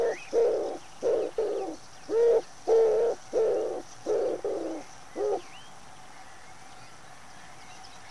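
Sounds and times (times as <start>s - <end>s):
common wood pigeon giving hoarse low coos: 0.0s - 5.5s.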